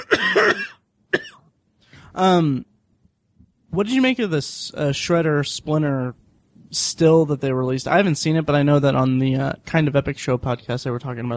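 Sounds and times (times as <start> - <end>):
person coughing with a throaty voiced hack: 0.0 - 1.4
speech: 2.2 - 2.7, 3.7 - 11.3.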